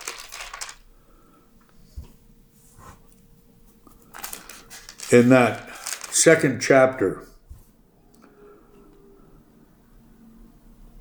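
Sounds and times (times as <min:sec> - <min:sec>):
pages of a Bible being turned: 0:00.0 - 0:00.8, 0:04.0 - 0:06.5
speech: 0:05.1 - 0:07.3.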